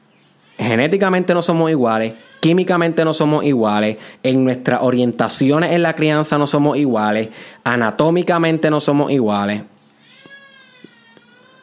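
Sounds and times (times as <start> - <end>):
speech: 0.7 - 9.7
baby girl crying: 2.0 - 3.0, 10.0 - 11.6.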